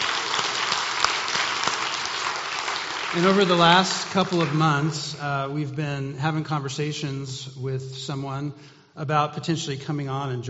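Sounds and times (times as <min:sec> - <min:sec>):
audience applauding: 0:00.0 - 0:05.2
speech: 0:03.1 - 0:10.4.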